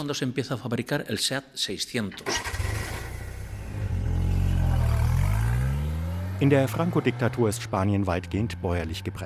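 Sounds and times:
speech: 0.0s - 2.6s, 6.4s - 9.2s
small engine of a Seat 600 car starting up and revving: 2.3s - 7.6s.

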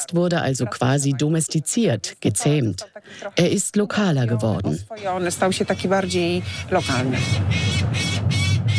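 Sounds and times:
speech: 0.1s - 8.2s
falcon screeching while circling a tower: 5.7s - 8.7s.

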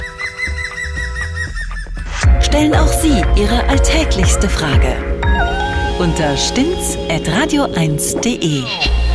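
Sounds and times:
green woodpecker laughing call: 0.0s - 2.0s
speech: 2.5s - 5.1s, 6.0s - 9.0s.

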